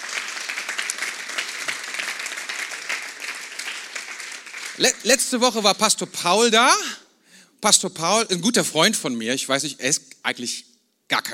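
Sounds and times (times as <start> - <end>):
large crowd applauding: 0.0 - 5.7
speech: 4.8 - 7.0, 7.6 - 11.3.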